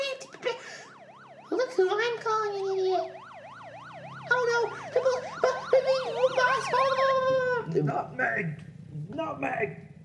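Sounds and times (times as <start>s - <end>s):
police car siren yelping: 0.0s - 8.9s
speech: 7.7s - 9.8s.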